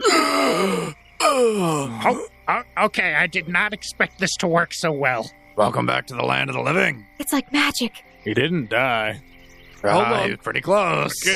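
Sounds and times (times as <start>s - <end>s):
person gasping awake with a groaning strained quality: 0.0s - 2.3s
speech: 1.4s - 11.3s.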